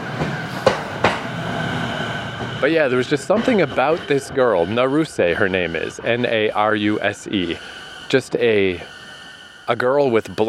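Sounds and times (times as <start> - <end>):
train passing going the other way: 0.0 - 10.4
speech: 2.6 - 9.0, 9.7 - 10.4.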